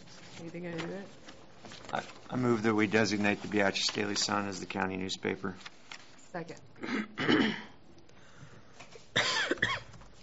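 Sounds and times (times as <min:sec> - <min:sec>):
speech: 0:00.4 - 0:07.6
person coughing during a county board meeting: 0:06.8 - 0:07.8, 0:09.2 - 0:09.9.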